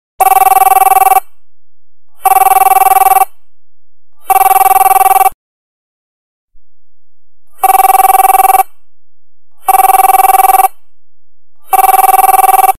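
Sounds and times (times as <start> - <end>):
mobile phone ringtone: 0.2 - 1.3, 2.2 - 3.3, 4.2 - 5.4, 7.6 - 8.8, 9.6 - 10.8, 11.6 - 12.7.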